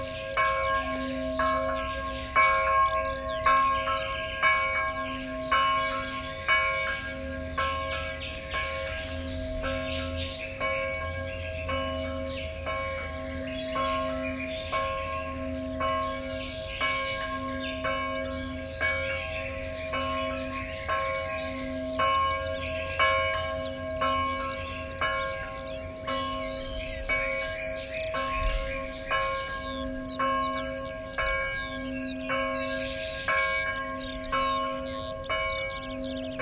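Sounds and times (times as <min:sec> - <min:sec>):
church bells ringing the evening peal: 0:00.0 - 0:36.4
faint birds chirping: 0:00.0 - 0:36.4.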